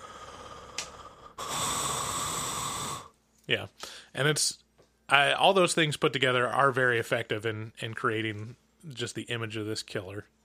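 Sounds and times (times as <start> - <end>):
voice imitating the heavy raspy breathing of a masked killer: 0.0 - 3.2, 3.8 - 4.1
speech: 3.5 - 10.4.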